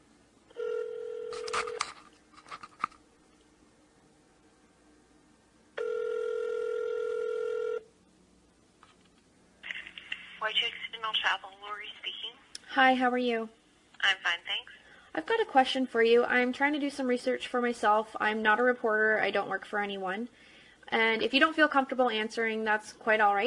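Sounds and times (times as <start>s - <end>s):
telephone dialing tones: 0.5s - 1.8s, 5.8s - 7.8s
speech: 12.7s - 14.4s, 15.2s - 23.4s.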